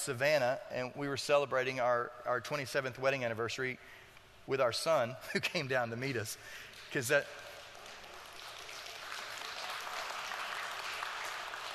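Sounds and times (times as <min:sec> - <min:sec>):
speech: 0:00.0 - 0:07.4
audience clapping: 0:06.6 - 0:11.7.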